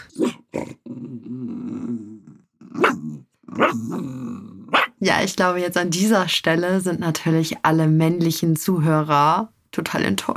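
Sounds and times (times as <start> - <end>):
dog growling: 0.0 - 5.0
dogs barking: 2.8 - 3.9, 4.7 - 5.0
speech: 5.0 - 10.3.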